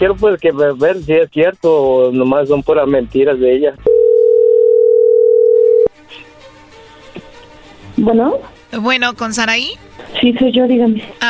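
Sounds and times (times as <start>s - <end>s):
speech: 0.0s - 4.0s, 8.0s - 11.2s
telephone dial tone while a call is being placed: 3.9s - 5.9s.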